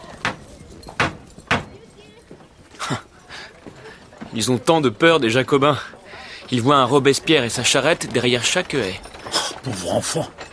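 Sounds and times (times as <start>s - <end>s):
faint noise: 0.0s - 10.5s
bronze knocker struck on an immense mansion door in the Faubourg Saint-Germain: 0.2s - 1.8s
speech: 4.4s - 10.4s.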